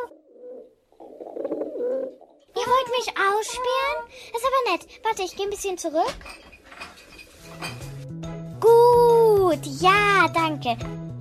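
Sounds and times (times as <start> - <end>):
pigeons cooing: 0.2 - 2.4
speech: 2.8 - 6.5, 9.4 - 11.0.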